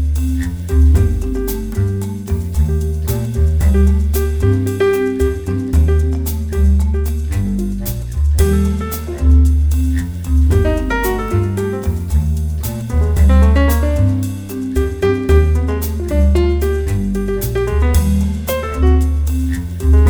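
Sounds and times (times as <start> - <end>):
solo piano piece: 0.2 - 7.8, 8.4 - 20.0.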